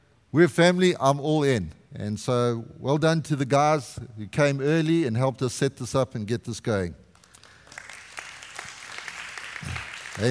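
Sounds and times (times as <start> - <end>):
speech: 0.3 - 7.0
church congregation applauding during a Sunday service: 7.1 - 10.2.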